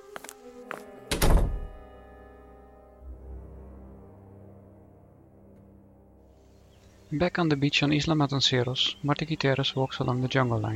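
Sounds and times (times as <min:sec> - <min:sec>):
control room door swinging shut with a heavy thud: 0:01.1 - 0:01.8
speech: 0:07.1 - 0:10.7.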